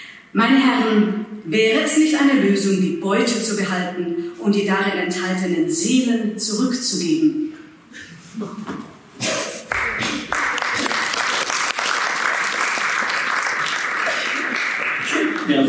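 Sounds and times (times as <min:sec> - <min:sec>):
speech: 0:00.3 - 0:08.8
audience applause of many hands: 0:09.7 - 0:15.6.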